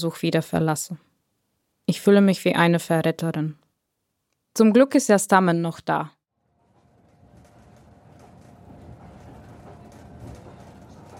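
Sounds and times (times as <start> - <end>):
speech: 0.0 - 1.1, 1.9 - 3.6, 4.6 - 6.2
faint rattles and clatter in a train carriage: 6.4 - 11.1
moving train carriage rumble on a train to Bucharest: 6.5 - 11.1.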